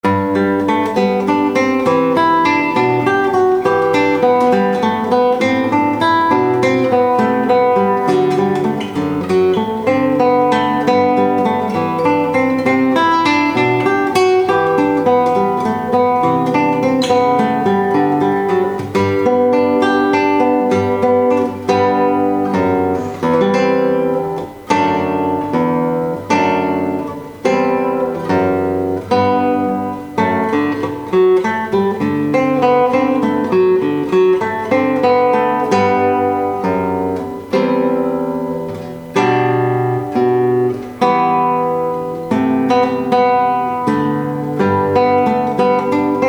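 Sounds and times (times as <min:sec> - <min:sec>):
classical guitar playing at a wedding ceremony: 0:00.0 - 0:46.2.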